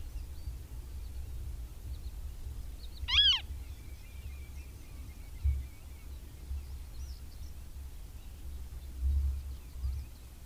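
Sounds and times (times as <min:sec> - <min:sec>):
low steady rumble of background noise: 0:00.0 - 0:10.4
Western marsh harrier giving a short thin arched call: 0:03.1 - 0:03.5.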